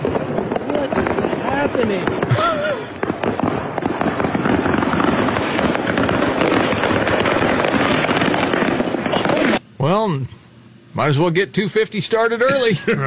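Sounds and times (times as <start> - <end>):
fireworks display crackling and popping over an interstate highway: 0.0 - 9.6
speech: 1.9 - 2.9, 11.0 - 13.0.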